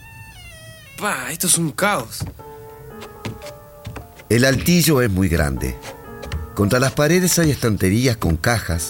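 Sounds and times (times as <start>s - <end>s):
speech: 1.0s - 2.4s, 4.3s - 6.0s, 6.6s - 8.8s
stuck door being forced open with thumps: 2.1s - 7.6s.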